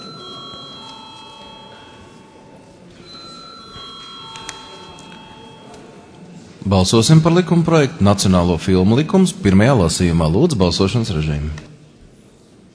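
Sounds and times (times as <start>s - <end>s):
electric bell ringing to call a vote in the Latvian parliament: 0.0s - 6.2s
noisy background: 0.0s - 12.7s
speech: 6.7s - 11.7s.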